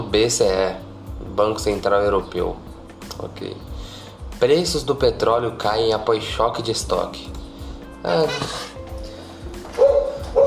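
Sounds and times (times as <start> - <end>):
low steady hum: 0.0 - 10.4
speech: 0.1 - 7.4, 8.0 - 8.7
dog barking: 9.8 - 10.4.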